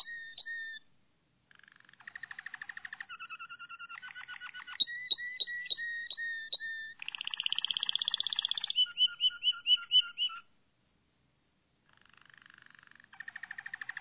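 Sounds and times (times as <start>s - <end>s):
Malinois Waterslager domestic canary song: 0.0s - 10.6s, 11.9s - 13.9s.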